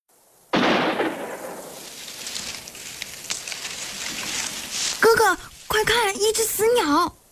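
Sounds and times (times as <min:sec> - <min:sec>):
steady hiss: 0:00.1 - 0:07.3
single loud sharp gunshot with long tail: 0:00.6 - 0:01.8
faint pops: 0:00.6 - 0:04.7
speech: 0:05.0 - 0:07.2.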